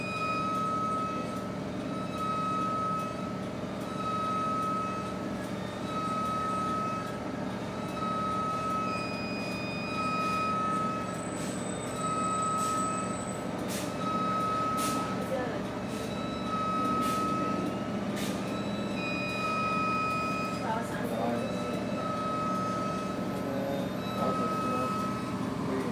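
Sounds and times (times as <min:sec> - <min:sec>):
bus engine idling at traffic lights: 0:00.1 - 0:25.9.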